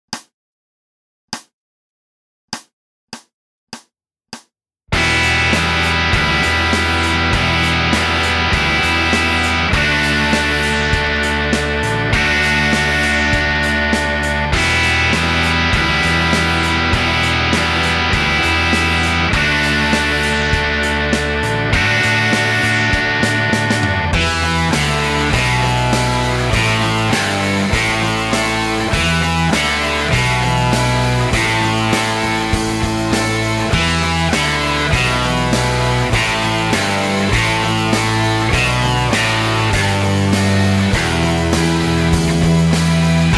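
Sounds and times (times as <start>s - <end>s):
rock guitar: 4.9s - 43.3s.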